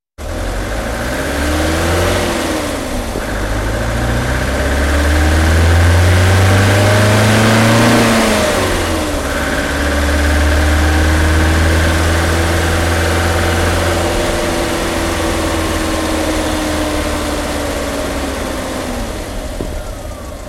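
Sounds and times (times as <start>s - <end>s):
engine accelerating: 0.2s - 20.4s.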